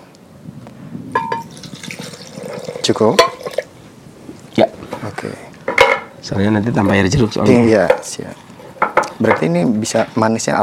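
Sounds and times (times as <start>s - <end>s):
young coconut water being poured into a container: 1.3s - 3.7s
speech: 2.9s - 3.4s, 4.6s - 5.6s, 6.2s - 8.5s, 9.2s - 10.6s.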